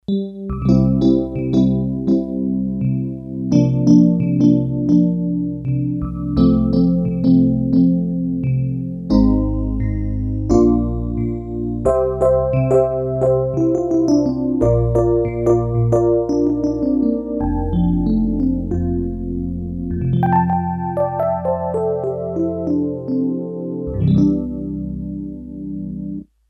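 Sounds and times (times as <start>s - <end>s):
Korg DS-8 electric piano factory patch: 0.0s - 26.3s.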